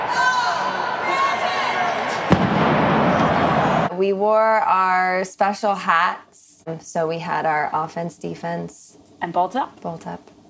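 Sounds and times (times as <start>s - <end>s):
crowd roar and chatter: 0.0s - 3.9s
cannon blast fired as a game is about to start: 2.2s - 3.9s
speech: 4.0s - 10.3s.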